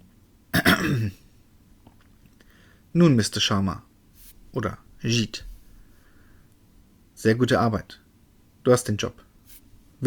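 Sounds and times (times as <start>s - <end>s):
throat clearing: 0.6s - 1.2s
speech: 0.8s - 1.2s, 2.9s - 3.9s, 4.5s - 5.5s, 7.2s - 8.0s, 8.6s - 9.2s.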